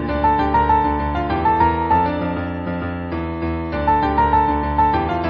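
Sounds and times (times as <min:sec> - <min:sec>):
fortepiano ringtone: 0:00.2 - 0:02.5, 0:03.8 - 0:05.2.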